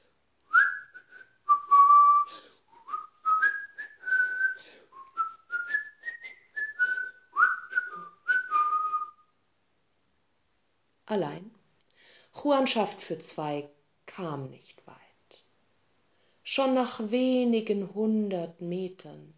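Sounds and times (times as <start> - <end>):
person whistling a bright lively tune: 0.5 - 9.3
speech: 11.1 - 11.6, 12.4 - 14.8, 16.6 - 19.3.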